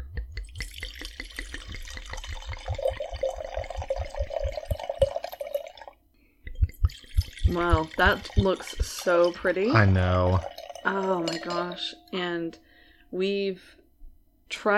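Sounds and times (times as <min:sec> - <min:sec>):
wine glugging from a bottle into a glass: 0:00.4 - 0:06.0, 0:06.6 - 0:12.2
speech: 0:07.5 - 0:13.7, 0:14.6 - 0:14.7.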